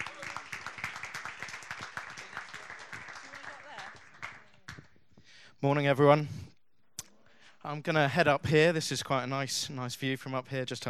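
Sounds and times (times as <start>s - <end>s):
room full of people applauding: 0.0s - 4.9s
speech: 5.6s - 6.4s, 7.6s - 10.8s.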